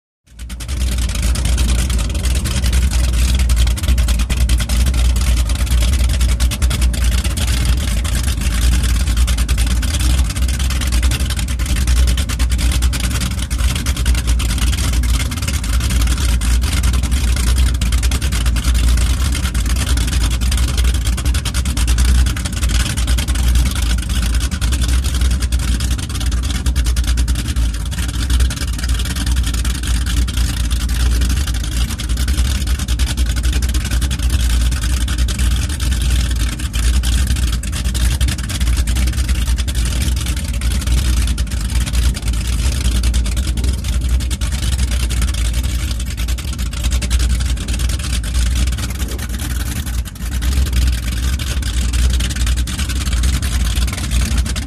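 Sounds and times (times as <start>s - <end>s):
offshore power boat engine idling: 0.3s - 54.6s.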